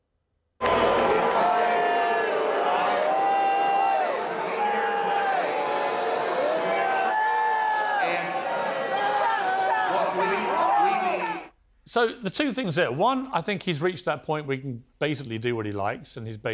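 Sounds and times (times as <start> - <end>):
large conference audience booing a speaker: 0.6 - 11.5
speech: 11.9 - 16.5.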